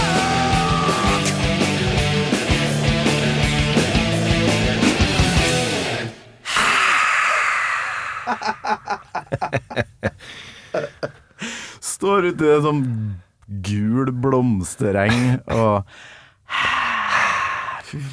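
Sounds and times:
loud rock music with pounding drums and dense guitars: 0.0s - 6.4s
breathy rushing noise: 6.4s - 8.5s
laughter: 8.2s - 11.3s
speech: 12.1s - 16.7s, 17.9s - 18.1s.

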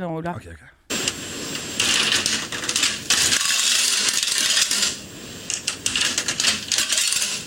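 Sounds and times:
speech: 0.0s - 0.8s
coins dropping in coin-pusher arcade machine: 1.8s - 7.4s.

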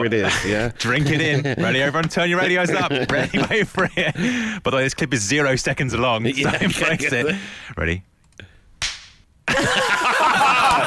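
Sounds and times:
speech: 0.0s - 8.1s, 9.5s - 10.8s
laughter: 0.2s - 4.4s, 6.3s - 7.4s, 9.5s - 10.8s
banana skin slapping against a head: 8.8s - 9.2s.

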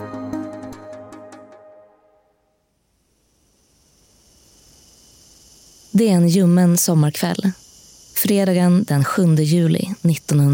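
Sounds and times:
cicadas buzzing in tall grass on a mild summer evening: 2.6s - 10.5s
speech: 6.0s - 7.6s, 8.2s - 10.5s.

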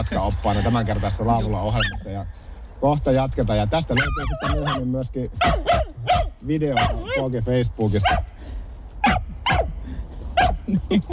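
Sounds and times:
speech: 0.0s - 5.8s, 6.4s - 8.4s, 10.7s - 11.1s
dog barking: 4.0s - 7.2s, 8.0s - 8.3s, 9.0s - 9.7s, 10.4s - 10.6s.

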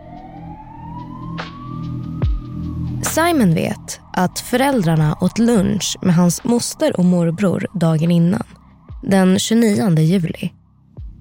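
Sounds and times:
ambulance siren wailing: 0.0s - 8.4s
speech: 3.2s - 10.6s.

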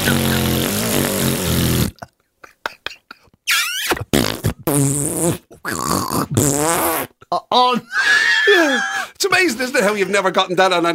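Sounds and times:
voice blowing a long wet raspberry imitating a fart: 0.0s - 2.1s, 3.5s - 7.2s
speech: 4.7s - 8.0s, 9.2s - 10.9s.

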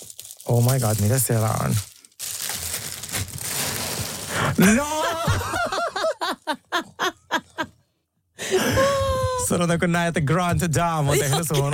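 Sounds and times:
package wrapping crinkling and rustling as it is opened: 0.0s - 4.6s
speech: 0.5s - 1.9s, 4.6s - 5.6s, 8.5s - 11.7s
laughter: 4.6s - 7.7s, 8.5s - 9.5s, 11.0s - 11.7s.

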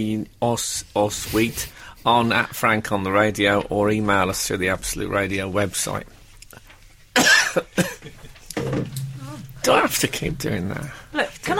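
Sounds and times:
speech: 0.0s - 6.6s, 9.6s - 11.5s
person coughing with a throaty hack: 7.2s - 8.1s.

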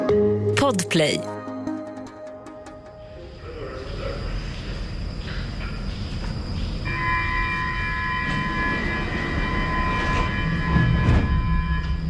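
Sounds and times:
speech: 0.7s - 1.3s
subway train rumbling: 3.0s - 12.0s
high sustained metallic squeals from subway train wheels: 6.8s - 12.0s.

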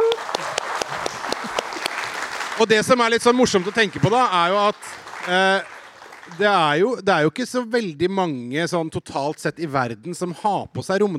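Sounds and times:
audience clapping: 0.0s - 6.9s
speech: 2.6s - 5.7s, 6.3s - 11.1s.

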